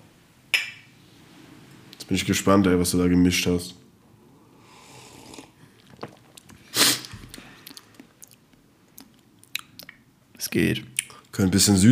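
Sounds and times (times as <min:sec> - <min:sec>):
two mugs clinking together in a toast: 0:00.5 - 0:00.9
speech: 0:02.1 - 0:03.8, 0:10.6 - 0:11.9.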